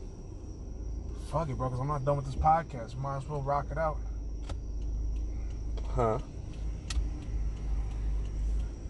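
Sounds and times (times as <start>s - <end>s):
idling car engine: 0.0s - 8.8s
speech: 1.3s - 4.6s, 6.0s - 6.4s
car turn signal ticking: 1.5s - 8.8s.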